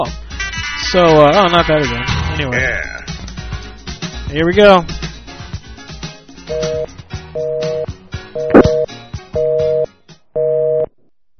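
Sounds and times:
speech: 0.0s - 0.2s, 0.9s - 3.1s, 4.3s - 5.0s
telephone busy signal during a prank call: 6.5s - 10.9s.

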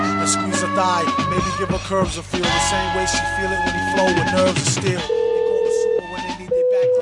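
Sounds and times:
speech: 0.3s - 5.2s
phone ringback tones through the earpiece: 5.0s - 6.9s.

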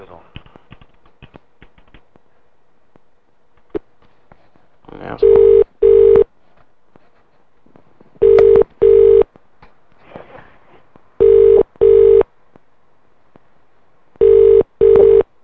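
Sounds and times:
telephone ringing tone on a line to a hotel restaurant: 5.2s - 6.2s, 8.2s - 9.2s, 11.2s - 12.2s, 14.2s - 15.2s.

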